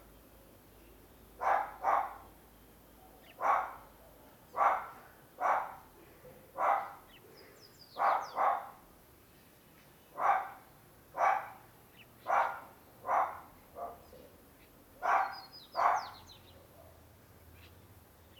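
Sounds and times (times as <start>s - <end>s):
small dog barking near a corridor: 1.4s - 2.3s, 3.1s - 3.9s, 4.6s - 5.9s, 6.5s - 7.0s, 8.0s - 8.8s, 10.2s - 11.6s, 12.2s - 14.2s, 15.0s - 17.0s.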